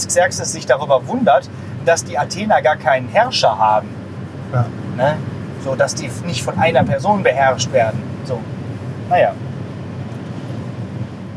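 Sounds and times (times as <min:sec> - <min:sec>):
speech: 0:00.0 - 0:08.5, 0:09.1 - 0:09.5
low rumbling wind buffeting the microphone: 0:04.0 - 0:11.3.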